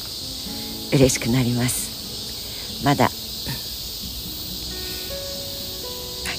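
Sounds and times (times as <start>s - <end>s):
chorus of minminzemi robust cicadas singing outdoors: 0.0s - 6.3s
speech: 0.9s - 1.9s, 2.8s - 3.2s.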